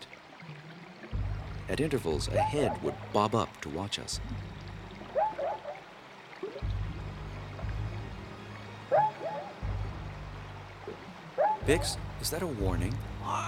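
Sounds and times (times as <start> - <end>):
rushing river water flowing: 0.0 - 13.4
low churning rumble of river water: 1.1 - 5.2, 6.6 - 8.8, 9.6 - 13.4
speech: 1.7 - 4.5, 11.7 - 13.4.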